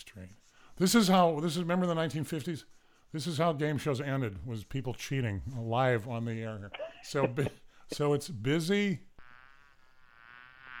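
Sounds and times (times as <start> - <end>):
speech: 0.0 - 9.1
bee buzzing: 9.2 - 10.7.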